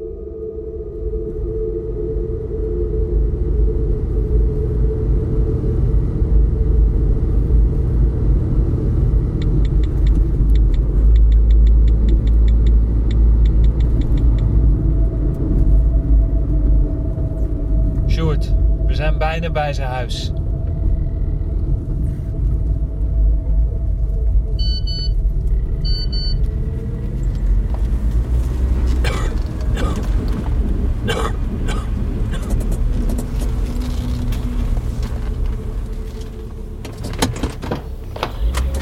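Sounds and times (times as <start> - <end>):
car engine rumble while driving: 0.0 - 38.7
faint rhythmic ticking: 9.4 - 14.6
speech: 19.4 - 20.4.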